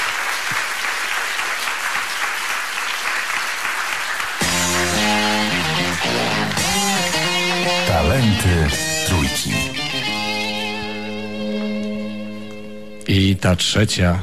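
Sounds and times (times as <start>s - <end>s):
audience applause for an award winner at a talent awards ceremony: 0.0s - 9.4s
music with clear sustained tones: 4.4s - 13.1s
speech: 8.4s - 9.8s, 13.1s - 14.2s.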